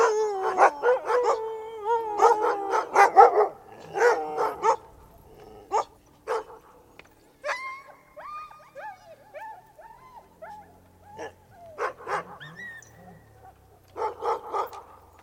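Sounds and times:
Siberian Husky whining yelps: 0.0 - 4.8, 7.4 - 14.8
Siberian Husky barking: 2.2 - 4.9, 5.7 - 6.7, 11.2 - 12.6, 13.4 - 15.0.

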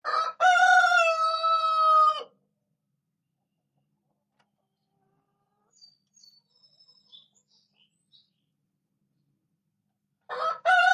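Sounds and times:
rooster crowing: 0.0 - 2.4, 10.3 - 10.9.

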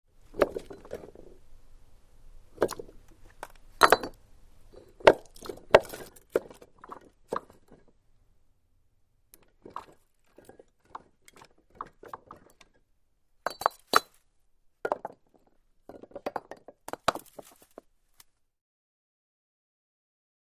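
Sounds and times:
ceramic rocks moving: 0.2 - 1.4, 2.5 - 8.0, 9.4 - 17.9.

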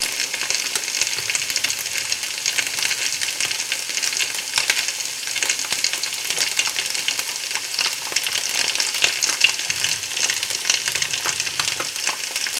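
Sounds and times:
high frying sizzle: 0.0 - 12.5.

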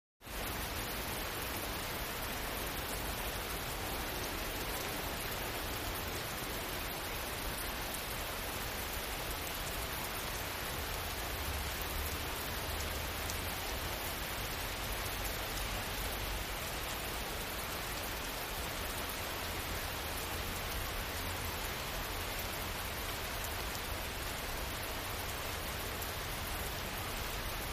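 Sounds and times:
medium distant rain: 0.2 - 27.7.

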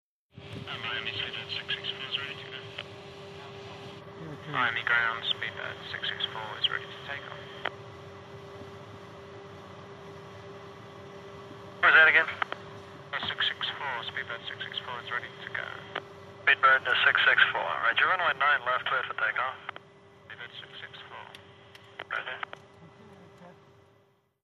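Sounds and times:
707 aircraft cockpit interior on the ground: 0.4 - 24.3.

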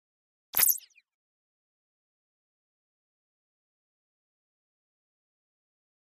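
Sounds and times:
quick laser release: 0.6 - 1.0.

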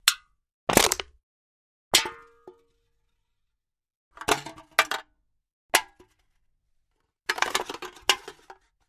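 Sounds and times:
aluminium can being crushed: 0.0 - 1.2, 4.2 - 5.1, 7.3 - 8.7.

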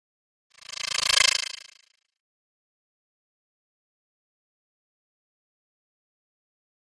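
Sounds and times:
electric rattle wash: 0.6 - 1.8.

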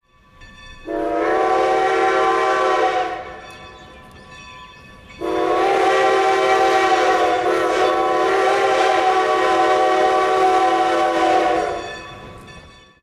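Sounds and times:
steam train whistle: 0.8 - 3.5, 5.2 - 12.0.

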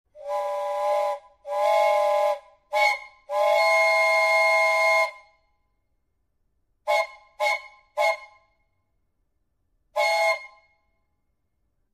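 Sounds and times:
train air whistle: 0.2 - 5.3, 6.9 - 8.5, 10.0 - 10.8.

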